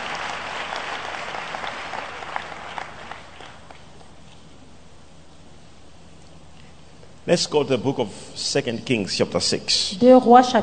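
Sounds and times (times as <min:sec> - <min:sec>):
audience applauding: 0:00.0 - 0:04.0
speech: 0:07.3 - 0:10.6.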